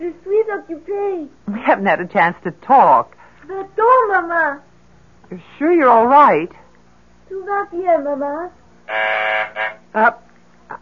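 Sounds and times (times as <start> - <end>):
speech: 0.6 - 4.7, 5.3 - 6.6, 7.3 - 10.8
apartment phone buzzer from downstairs: 8.8 - 10.0.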